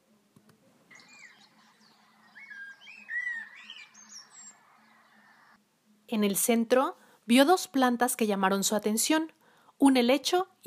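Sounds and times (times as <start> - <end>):
birds chirping and trilling in a garden: 0.9 - 5.6
speech: 6.1 - 10.6.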